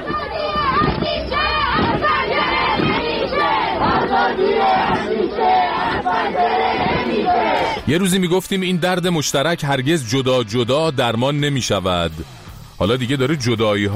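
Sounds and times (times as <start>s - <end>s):
large crowd of young people chanting a protest slogan at night in Ekbatan Tehran: 0.0s - 9.2s
speech: 7.2s - 13.9s.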